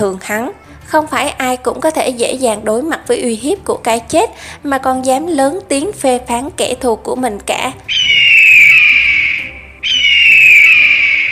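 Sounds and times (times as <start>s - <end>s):
speech: 0.0s - 8.2s
eagle cry: 7.9s - 11.2s.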